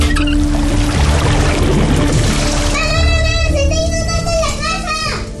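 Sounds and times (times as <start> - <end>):
water rushing and gurgling in a kitchen sink clogging with food scraps: 0.2 - 3.5
voices speaking: 2.7 - 5.3.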